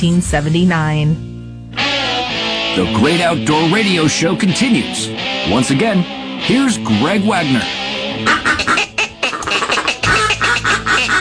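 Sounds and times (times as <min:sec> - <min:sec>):
speech: 0:00.0 - 0:01.3, 0:02.8 - 0:08.4
duck call quacking: 0:08.2 - 0:11.1.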